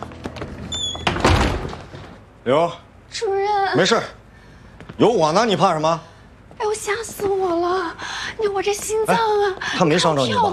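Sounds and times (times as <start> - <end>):
door shutting with a thud: 0.8 - 2.2
speech: 2.4 - 4.2, 5.0 - 10.5.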